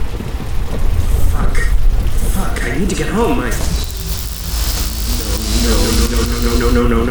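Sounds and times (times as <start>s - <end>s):
heavy rain: 0.2s - 7.0s
speech: 3.2s - 3.8s.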